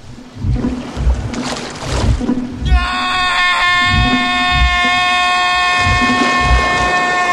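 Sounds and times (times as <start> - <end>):
water churning and splashing from a shark attack: 0.0 - 7.3
man screaming during a shark attack: 2.6 - 7.3.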